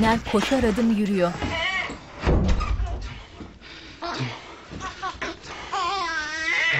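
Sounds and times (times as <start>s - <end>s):
speech: 0.0s - 1.6s
door opening with a heavy thump and rattle: 2.2s - 3.2s
baby's wavering cry: 4.8s - 6.7s.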